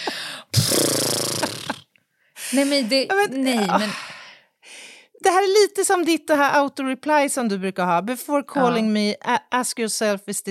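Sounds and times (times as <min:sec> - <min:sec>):
person breathing heavily: 0:00.0 - 0:01.3, 0:03.7 - 0:05.1
speech: 0:02.5 - 0:04.1, 0:05.3 - 0:10.4.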